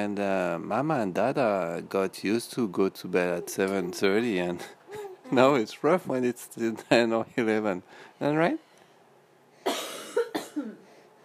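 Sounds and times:
speech: 0.0s - 8.7s
woman coughing: 9.7s - 10.8s.

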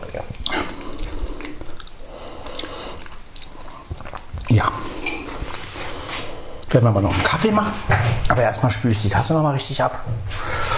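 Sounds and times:
crunchy chewing of biscuits: 0.5s - 4.6s
speech: 6.7s - 10.6s.

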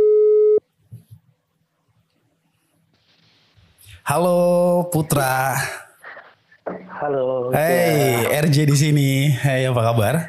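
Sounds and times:
telephone line tone as a phone call is placed: 0.0s - 0.6s
speech: 4.0s - 5.8s, 6.7s - 10.2s.

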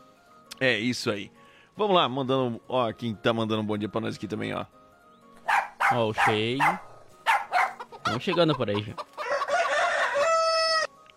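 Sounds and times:
speech: 0.6s - 4.8s, 5.9s - 6.9s, 8.1s - 9.1s
rooster crowing in the early morning: 9.2s - 10.9s.

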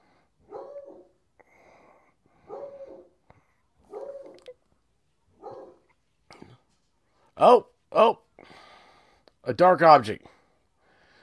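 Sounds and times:
dog barking: 0.4s - 1.2s, 2.4s - 3.2s, 3.8s - 4.6s, 5.3s - 6.0s
speech: 7.4s - 8.2s, 9.5s - 10.4s.

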